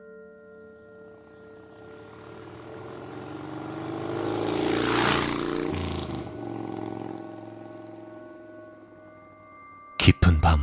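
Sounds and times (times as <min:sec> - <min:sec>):
small scooter engine riding along railway tracks: 0:01.6 - 0:08.0.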